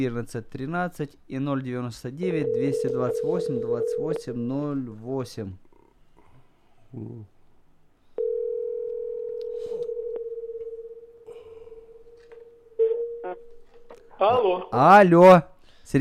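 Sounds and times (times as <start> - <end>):
speech: 0.0 - 5.7, 6.9 - 7.3, 14.2 - 16.0
telephone dial tone while a number is dialled: 2.4 - 4.3, 8.2 - 11.0.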